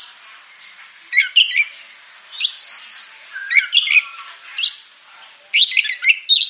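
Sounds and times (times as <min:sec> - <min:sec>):
Oriental magpie-robin giving sharp whistles and chirps: 0:01.1 - 0:04.9, 0:05.6 - 0:06.4.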